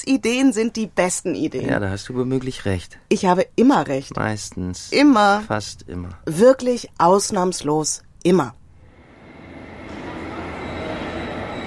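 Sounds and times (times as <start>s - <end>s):
speech: 0.0s - 8.6s
ICE high-speed train arriving at a station platform: 8.8s - 11.6s.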